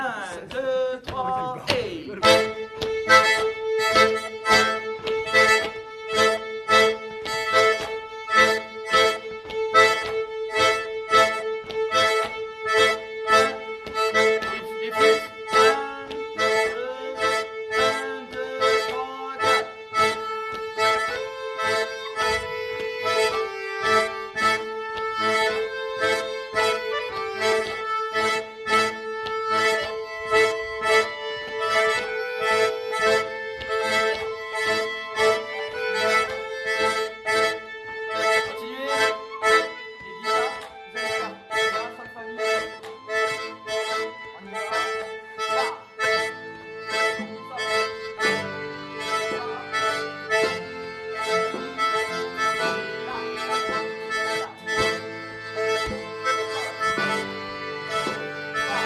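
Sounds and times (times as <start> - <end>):
rhythmic accordion: 0.0 - 58.8
violin: 0.0 - 58.8.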